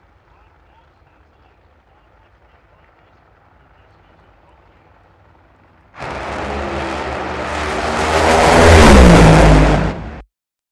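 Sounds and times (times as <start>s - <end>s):
drag racing funny cars roaring past: 6.0s - 10.2s.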